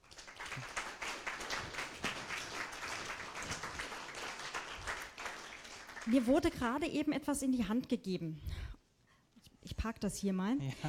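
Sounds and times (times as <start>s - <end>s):
crowd applauding: 0.0s - 6.7s
speech: 6.1s - 8.7s, 9.8s - 10.8s.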